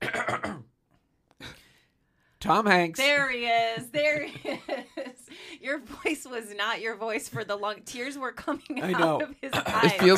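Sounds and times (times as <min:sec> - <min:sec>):
person coughing harshly: 0:00.0 - 0:00.7, 0:09.5 - 0:10.1
speech: 0:02.4 - 0:10.1
laughter: 0:03.6 - 0:05.3.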